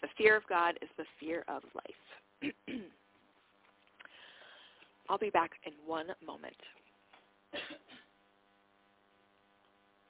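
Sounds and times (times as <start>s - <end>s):
faint hiss: 0.0s - 10.0s
speech: 0.2s - 3.0s, 5.1s - 6.8s, 7.5s - 8.0s
cough away from the phone: 2.4s - 3.0s, 7.5s - 8.1s.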